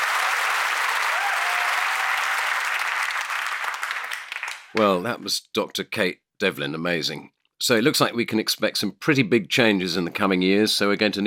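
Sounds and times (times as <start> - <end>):
large crowd applause: 0.0 - 4.8
speech: 4.7 - 11.2.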